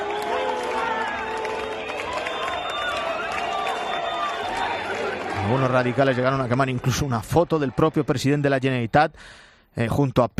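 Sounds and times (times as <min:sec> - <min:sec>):
people shouting insults at a Catalan separatist demonstration: 0:00.0 - 0:07.0
applause at a Catalan separatist demonstration: 0:00.0 - 0:08.3
dense crowd roar at a Catalan separatist demonstration: 0:00.0 - 0:08.6
crowd whistles at a Catalan separatist demonstration: 0:01.6 - 0:05.0
speech: 0:05.5 - 0:10.3.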